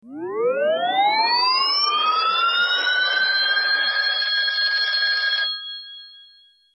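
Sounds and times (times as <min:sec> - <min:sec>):
warped ring ringtone: 0:00.0 - 0:06.7.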